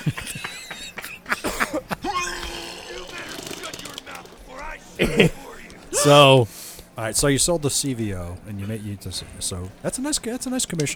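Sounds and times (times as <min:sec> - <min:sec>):
speech: 0:00.0 - 0:00.4, 0:05.0 - 0:05.4, 0:06.0 - 0:10.9
laughter: 0:00.0 - 0:06.4
harsh coughs into microphone: 0:05.0 - 0:06.2.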